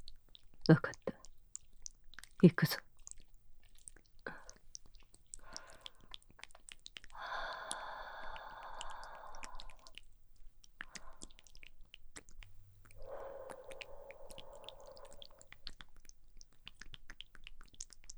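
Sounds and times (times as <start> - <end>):
speech: 0.7 - 1.0, 2.4 - 2.8
soft breaths blown toward the listener: 5.4 - 6.2, 7.0 - 10.0, 10.8 - 11.5, 12.4 - 15.6.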